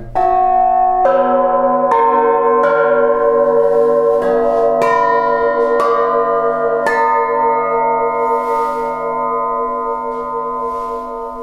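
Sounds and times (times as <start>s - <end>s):
bells made from artillery shell casings ringing: 0.0s - 11.4s.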